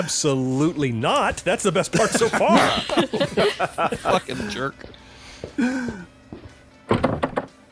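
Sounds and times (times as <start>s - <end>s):
speech: 0.0s - 6.1s
laughter: 1.9s - 4.8s
door creaking on its hinges: 6.9s - 7.6s.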